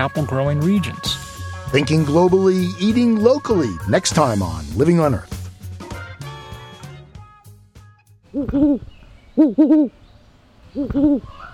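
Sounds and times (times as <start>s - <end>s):
musical tones: 0.0s - 5.3s
speech: 0.0s - 5.3s, 8.4s - 10.0s, 10.8s - 11.4s
great horned owls hooting: 8.3s - 10.0s, 10.7s - 11.5s.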